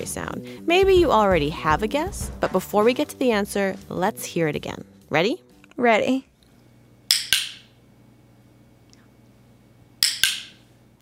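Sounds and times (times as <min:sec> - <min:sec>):
speech: 0:00.0 - 0:06.3
dog training clicker clicks: 0:07.1 - 0:07.6, 0:10.0 - 0:10.6.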